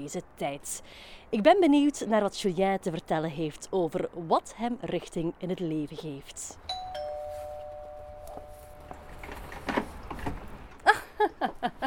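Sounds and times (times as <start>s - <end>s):
speech: 0.0s - 7.0s, 11.2s - 11.8s
electronic doorbell tone: 6.7s - 9.2s
shuffling noises: 7.0s - 10.6s.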